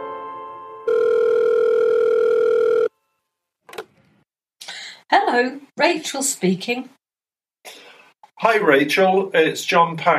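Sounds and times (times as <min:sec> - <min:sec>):
short telephone tones: 0:00.9 - 0:02.9
speech: 0:05.3 - 0:07.0, 0:08.4 - 0:10.1.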